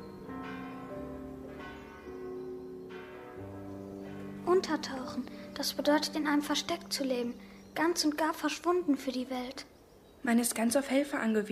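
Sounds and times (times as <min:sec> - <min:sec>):
muffled church bell ringing: 0:00.0 - 0:10.0
speech: 0:04.6 - 0:11.5.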